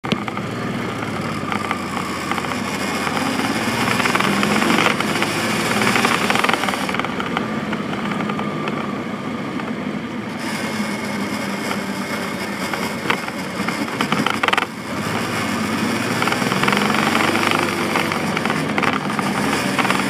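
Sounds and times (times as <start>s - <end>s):
loud rattle in block at motorcycle drive chain: 0.0s - 8.4s, 10.4s - 20.0s
motorcycle engine: 0.0s - 20.0s.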